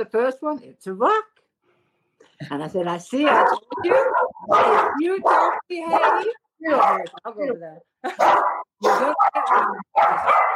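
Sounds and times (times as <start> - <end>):
speech: 0.0 - 1.4, 2.4 - 10.5
dog barking: 3.2 - 7.2, 8.1 - 10.5.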